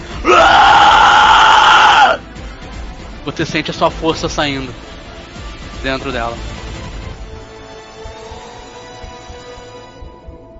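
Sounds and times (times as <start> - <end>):
woman screaming in someone's face: 0.2 - 2.2
speech: 3.4 - 4.9, 5.8 - 6.5.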